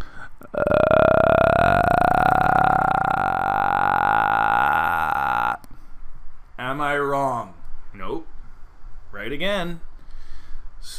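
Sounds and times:
person imitating a horror movie villain's guttural growl: 0:00.4 - 0:05.7
speech: 0:09.4 - 0:09.8.

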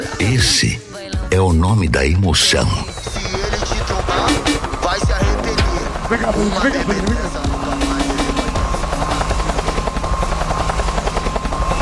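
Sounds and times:
helicopter rotor running close by with whine and blade thumps: 0:00.0 - 0:11.8
speech: 0:00.2 - 0:03.3, 0:06.1 - 0:07.4.

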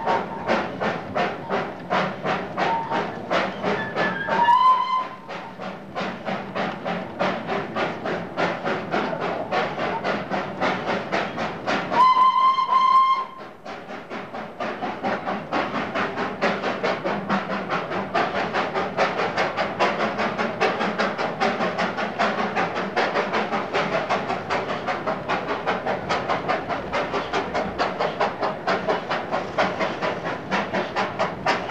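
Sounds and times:
small Darjeeling mountain toy train chuffing up a grade: 0:00.0 - 0:31.7
mountain train whistle blasts: 0:02.6 - 0:05.3, 0:11.9 - 0:13.5.

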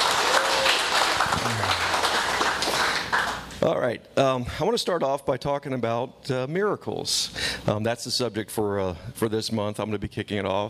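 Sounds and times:
crowd applauding: 0:00.0 - 0:03.5
faint voice or whoop: 0:00.2 - 0:01.8
speech: 0:03.6 - 0:10.6.

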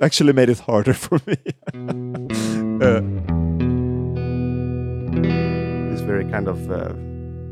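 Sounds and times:
speech: 0:00.0 - 0:03.3, 0:06.0 - 0:07.1
laughter: 0:00.8 - 0:03.1
clean twangy Fender electric guitar playing a 1960s Western-style riff: 0:01.8 - 0:07.5.

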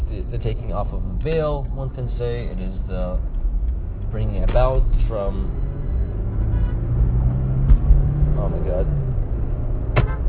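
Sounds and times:
car engine and road rumble inside a car driving through heavy traffic: 0:00.0 - 0:10.2
speech: 0:00.3 - 0:03.4, 0:04.1 - 0:05.7, 0:08.4 - 0:09.0
heavy thumps: 0:07.6 - 0:08.0.

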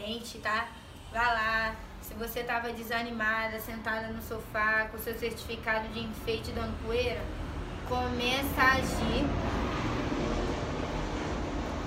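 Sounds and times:
speech: 0:00.1 - 0:09.7
airplane passing overhead: 0:06.0 - 0:11.8.

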